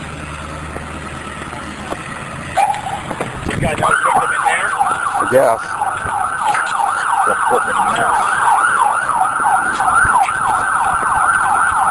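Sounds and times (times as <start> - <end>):
ambulance siren yelping: 2.5 - 11.8
speech: 3.6 - 4.0, 5.3 - 5.8, 7.3 - 8.4.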